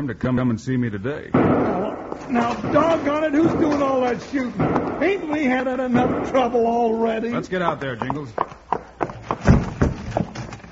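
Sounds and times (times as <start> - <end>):
speech: 0.0 - 8.6
ridden horse galloping down a street: 2.0 - 10.7.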